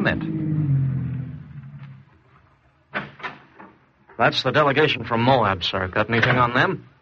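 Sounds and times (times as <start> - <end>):
official car engine rumbling low: 0.0 - 2.8
speech: 4.2 - 6.9.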